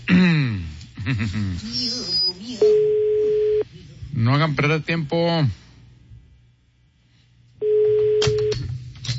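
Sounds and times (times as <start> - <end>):
speech: 1.0 - 3.1, 4.2 - 5.6
voices talking over a telephone line: 1.7 - 5.6
telephone ringback tone of an outgoing call: 2.6 - 3.6, 7.6 - 8.5.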